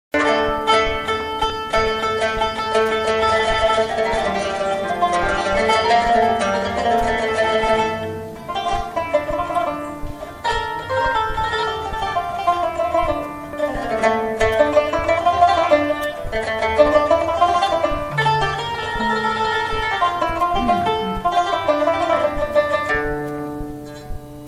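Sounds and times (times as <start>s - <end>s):
lute: 0.2s - 24.4s.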